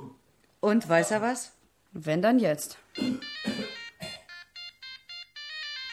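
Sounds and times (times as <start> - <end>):
speech: 0.7 - 3.3
telephone ringtone with bright electronic beeping melody: 2.9 - 5.9.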